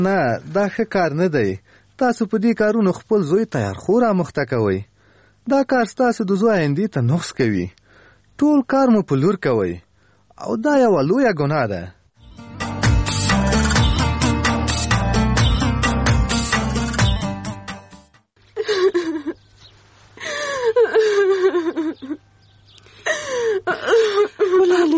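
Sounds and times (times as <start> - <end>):
speech: 0.0 - 7.8, 8.4 - 12.0
music: 12.2 - 18.3
girl crying: 20.2 - 22.2, 23.1 - 24.9.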